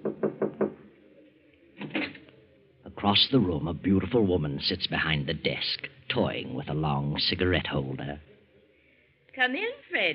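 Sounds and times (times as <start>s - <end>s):
knocking on a wooden office door in a cafe: 0.0s - 0.8s
speech: 3.0s - 8.3s, 9.4s - 10.1s.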